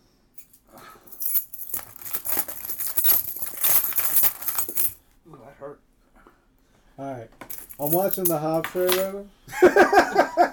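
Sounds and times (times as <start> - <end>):
keys scraped across phone screen: 0.4 - 5.0, 7.5 - 9.2
speech: 7.0 - 10.5
laughter: 9.5 - 10.5.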